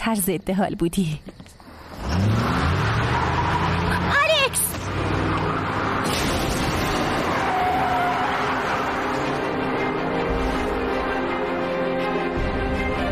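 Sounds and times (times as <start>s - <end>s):
speech: 0.0s - 1.4s
car engine roaring and accelerating hard: 1.6s - 13.0s
car tire squeal: 1.7s - 6.2s, 6.8s - 11.6s.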